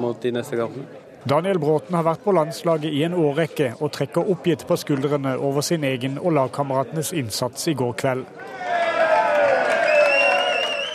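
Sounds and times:
speech: 0.1s - 8.8s
Swiss football supporters cheering and chanting outside a stadium: 8.4s - 10.9s
football supporters' whistles: 9.7s - 10.9s.

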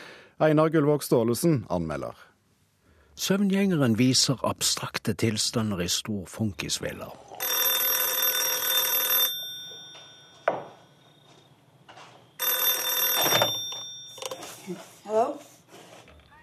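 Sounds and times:
speech: 0.4s - 2.2s, 3.2s - 7.7s
old-style telephone ringing: 7.4s - 14.7s.

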